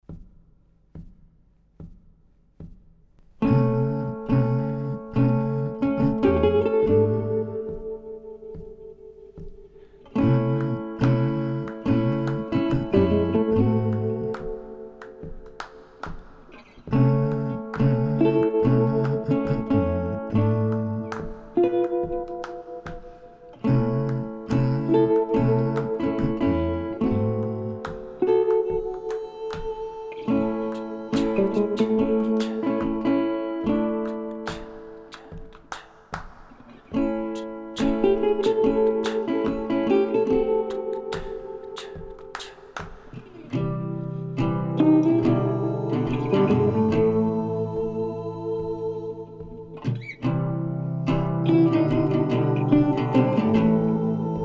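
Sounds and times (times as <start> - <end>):
lo-fi guitar: 3.2 - 54.4.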